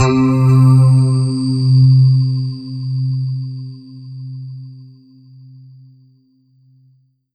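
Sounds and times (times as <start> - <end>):
Kawai K5000W synthesizer Sphaera patch note C3: 0.0 - 2.5.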